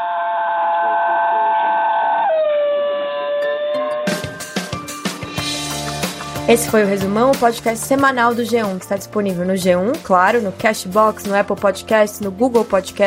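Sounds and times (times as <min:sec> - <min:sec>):
singing dog howling: 0:00.0 - 0:04.0
sharp rhythmic percussive bursts: 0:04.0 - 0:09.2
speech: 0:06.5 - 0:13.0.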